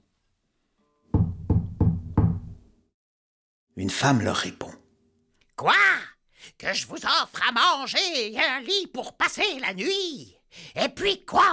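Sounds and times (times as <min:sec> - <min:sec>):
travellers knocking on the wooden door of a luxurious house: 0:01.1 - 0:02.6
speech: 0:03.8 - 0:04.8, 0:05.6 - 0:05.8, 0:06.6 - 0:11.5.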